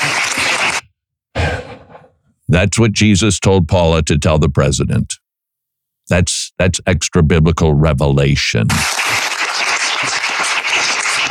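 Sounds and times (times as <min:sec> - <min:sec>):
crowd applauding: 0:00.0 - 0:00.8, 0:08.8 - 0:11.2
speech: 0:02.5 - 0:05.2, 0:06.1 - 0:09.2.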